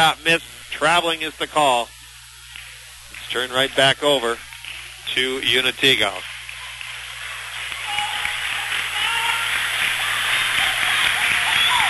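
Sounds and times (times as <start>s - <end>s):
speech: 0.0s - 2.0s, 3.3s - 4.5s, 5.1s - 6.3s
crowd applauding at a basketball game: 5.7s - 11.8s.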